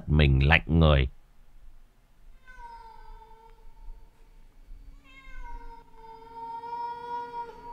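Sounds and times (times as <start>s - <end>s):
low hum: 0.0s - 7.7s
speech: 0.2s - 1.2s
large black cat meowing on a neighbouring rooftop: 2.3s - 3.6s, 4.9s - 7.7s.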